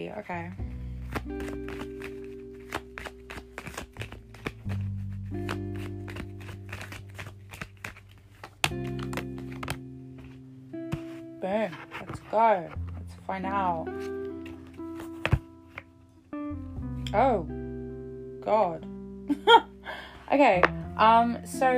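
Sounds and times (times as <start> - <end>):
speech: 0.0 - 0.6, 1.2 - 2.1, 11.5 - 14.2, 17.1 - 17.6, 18.5 - 19.7, 20.3 - 21.7
steady music: 0.0 - 21.7
tarot cards being shuffled and drawn: 1.0 - 13.2, 13.9 - 15.9.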